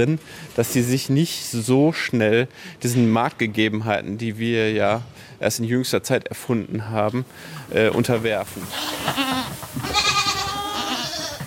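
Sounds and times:
speech: 0:00.0 - 0:10.1
young goats bleating at a goat farm: 0:08.6 - 0:11.4.

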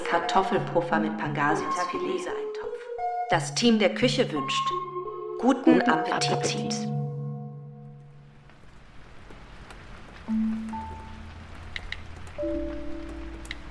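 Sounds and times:
speech: 0:00.1 - 0:02.6, 0:03.3 - 0:07.0
steady rain falling: 0:08.0 - 0:13.6.

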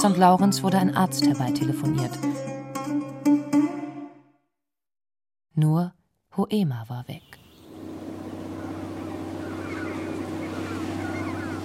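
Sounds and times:
speech: 0:00.0 - 0:02.5, 0:05.6 - 0:07.4
faint bird calls: 0:07.2 - 0:11.6
blue boat's engine droning on the water: 0:07.6 - 0:11.6
rushing water: 0:07.7 - 0:11.6.

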